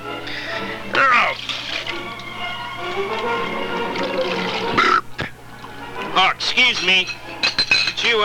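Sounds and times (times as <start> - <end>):
liquid pouring into a glass: 1.1 - 5.0
speech: 6.6 - 7.2
glass clinks: 6.6 - 8.2.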